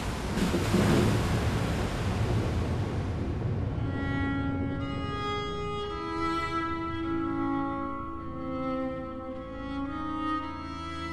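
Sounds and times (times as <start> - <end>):
torrential rain: 0.0 - 4.8
sustained musical tones: 3.5 - 11.1.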